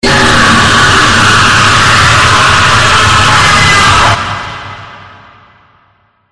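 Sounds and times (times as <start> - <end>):
person screaming: 0.0 - 4.2.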